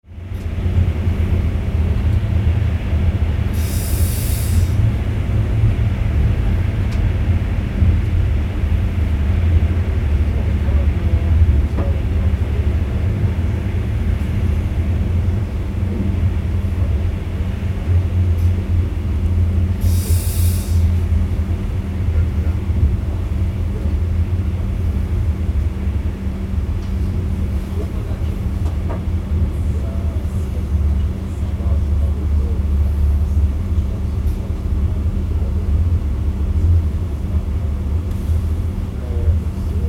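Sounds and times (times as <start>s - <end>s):
calm main line train cabin interior noise: 0.2s - 39.8s.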